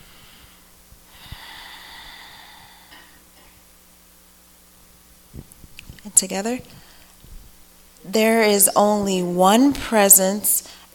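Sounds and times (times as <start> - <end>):
slow deep airy breath at a church service: 0.0 - 3.2
speech: 6.1 - 6.8, 8.1 - 10.6.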